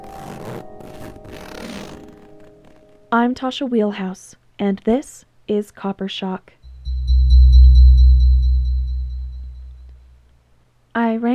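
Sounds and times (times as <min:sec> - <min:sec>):
zipper of a blue vinyl tent hatch pulled open: 0:00.0 - 0:02.8
speech: 0:03.1 - 0:06.6, 0:11.0 - 0:11.3
faint steady hum: 0:06.6 - 0:10.6.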